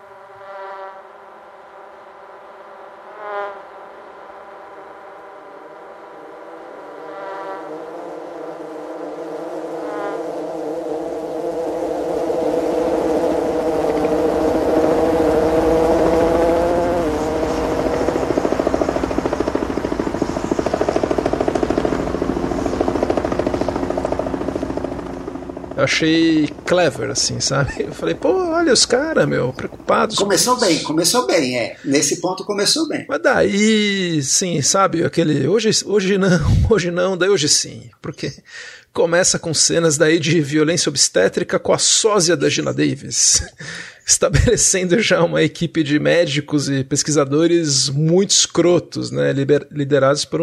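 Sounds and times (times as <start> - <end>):
housefly buzzing: 0.0 - 25.8, 27.8 - 32.2
helicopter rotor chopping: 4.3 - 33.8
speech: 25.8 - 50.4
laughter: 27.4 - 29.1, 30.1 - 32.3, 42.3 - 44.7.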